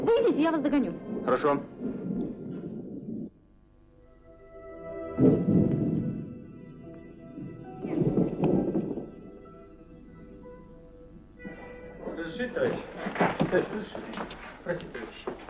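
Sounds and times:
deep thunder rolls: 0.0 - 3.4, 5.1 - 9.7
speech: 0.4 - 2.0, 13.5 - 15.4.

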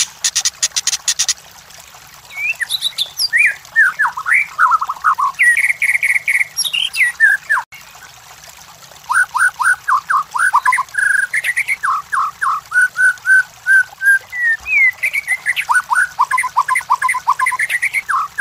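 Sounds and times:
White-rumped shama song: 0.0 - 1.4, 2.3 - 7.6, 9.1 - 18.3
faint high ticking: 0.0 - 1.4.

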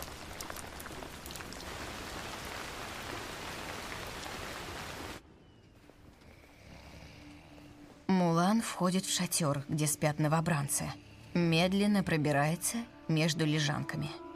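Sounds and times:
rain falling at night over a military camp: 0.0 - 5.2
speech: 8.6 - 14.2.

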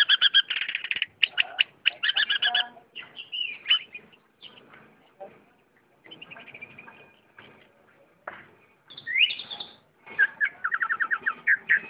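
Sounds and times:
Oriental magpie-robin singing: 0.0 - 4.7, 5.8 - 7.4, 8.9 - 11.8.

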